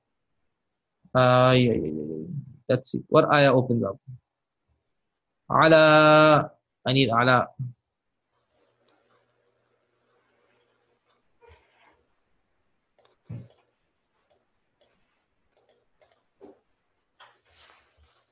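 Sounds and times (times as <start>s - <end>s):
speech: 1.1s - 2.1s, 2.7s - 4.2s, 5.5s - 7.8s
typing on a computer keyboard: 13.0s - 16.3s.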